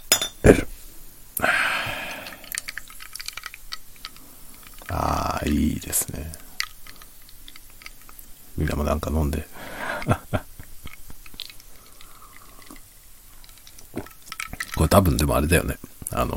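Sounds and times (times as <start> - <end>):
glass bottle clinking: 0.0 - 0.6
speech: 0.5 - 0.7, 5.5 - 6.4, 8.6 - 10.5, 14.9 - 16.3
fizzy hissing bursts: 0.7 - 14.9
laughter: 9.8 - 10.7.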